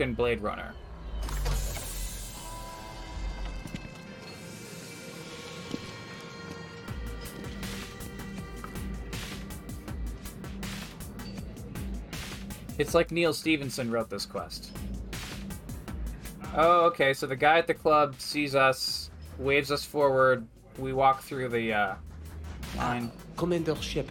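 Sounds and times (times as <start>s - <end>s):
speech: 0.0s - 1.3s, 12.8s - 14.8s, 16.6s - 22.1s, 22.7s - 24.1s
futuristic air car parking in a science-fiction video game: 0.0s - 12.7s.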